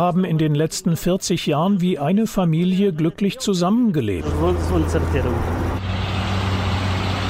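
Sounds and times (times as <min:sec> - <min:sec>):
speech: 0:00.0 - 0:06.1
heavy truck engine idling and rumbling at a border crossing: 0:04.2 - 0:07.2.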